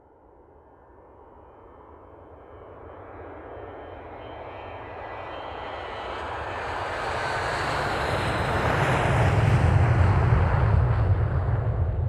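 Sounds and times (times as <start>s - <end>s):
airplane engine roaring in flight: 4.5s - 12.0s.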